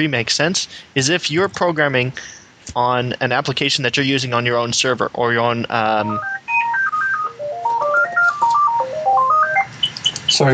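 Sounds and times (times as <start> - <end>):
speech: 0.0 - 6.4, 10.4 - 10.5
phone ringing with electronic melodic ringtone: 6.0 - 10.0.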